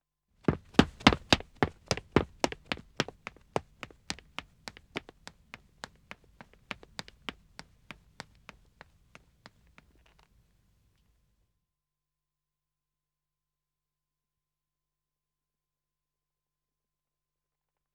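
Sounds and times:
man running footsteps on dead wood: 0:00.5 - 0:10.0.

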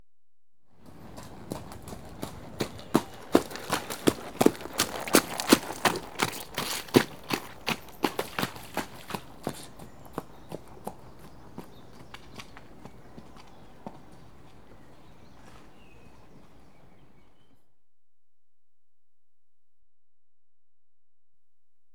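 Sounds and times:
one unshod horse trotting: 0:00.8 - 0:17.2.

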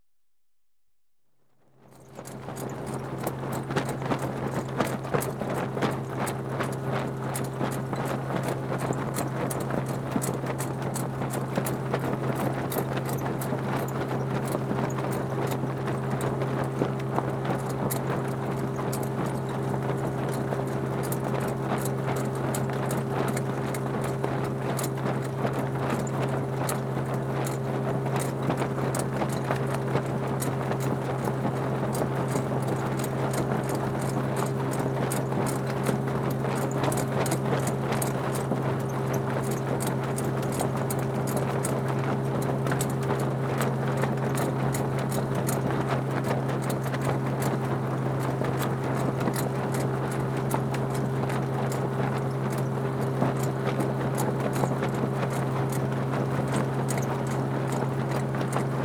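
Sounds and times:
sailing dinghy being towed: 0:02.1 - 0:58.8.

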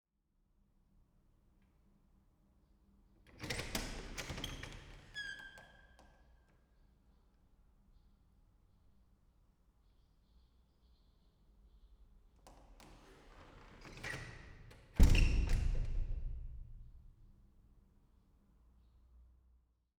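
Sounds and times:
squeaky old wooden school classroom door opening and closing: 0:03.4 - 0:06.2, 0:12.8 - 0:16.2.

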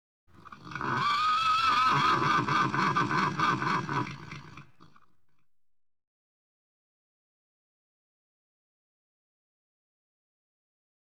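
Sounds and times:
laughing horse: 0:00.4 - 0:05.1.

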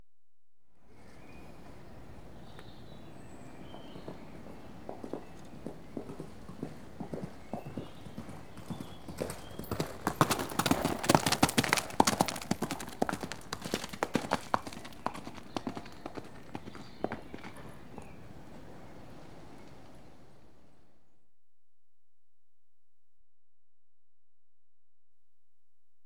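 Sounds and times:
unshod horse passing at canter: 0:01.3 - 0:20.4.

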